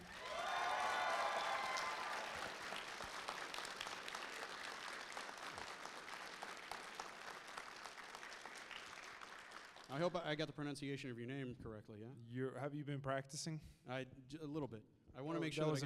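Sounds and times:
audience cheers and whoops: 0.0s - 2.9s
loud sustained applause from a large audience welcoming a guest to the stage: 0.0s - 9.9s
speech: 9.9s - 15.8s.

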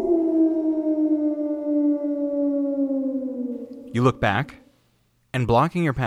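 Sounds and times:
wolf howling: 0.0s - 4.7s
speech: 3.9s - 4.6s, 5.3s - 6.0s.

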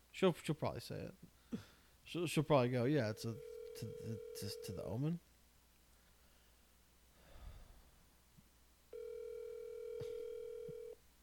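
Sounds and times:
speech: 0.2s - 5.3s
outgoing-call phone ringing tone: 3.1s - 4.9s, 8.9s - 11.0s.

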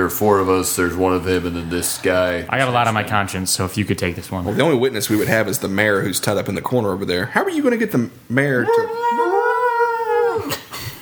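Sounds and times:
speech: 0.0s - 9.2s
two dogs howling outside: 8.5s - 10.9s.

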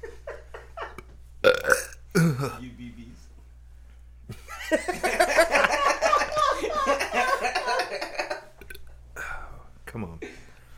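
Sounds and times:
laughter: 0.0s - 1.0s, 4.3s - 8.6s
loud, long rasping belch: 1.4s - 2.5s
person burping: 1.4s - 2.6s.

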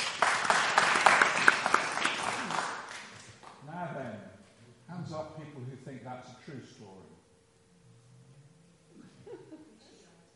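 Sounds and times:
audience applause: 0.0s - 3.6s
speech: 6.0s - 7.2s
laughter: 9.0s - 10.1s.

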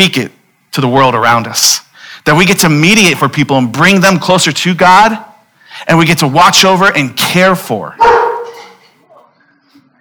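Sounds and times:
speech: 0.0s - 8.2s
dog barking: 8.0s - 8.8s.

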